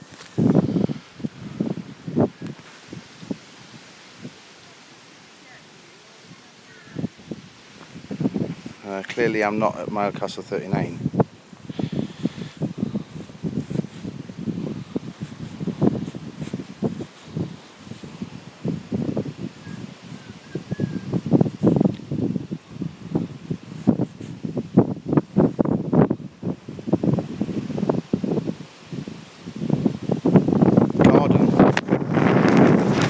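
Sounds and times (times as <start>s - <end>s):
rustling outdoors: 0.0s - 4.4s, 6.0s - 22.1s, 23.6s - 24.8s
strong outdoor wind buffeting the microphone: 0.0s - 33.0s
speech: 9.0s - 11.0s.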